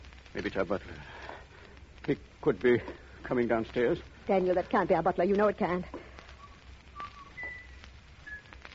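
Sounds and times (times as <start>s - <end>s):
low rumbling hiss: 0.0s - 8.7s
speech: 0.4s - 1.3s, 2.1s - 6.1s
person whistling a short tune: 6.4s - 8.7s.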